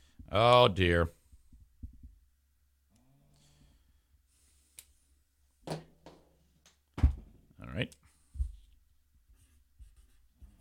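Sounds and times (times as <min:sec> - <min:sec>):
speech: 0:00.3 - 0:01.2, 0:07.8 - 0:08.0
low thumps of marker on whiteboard: 0:07.0 - 0:07.4
dry erase marker scratching on whiteboard: 0:09.4 - 0:10.5.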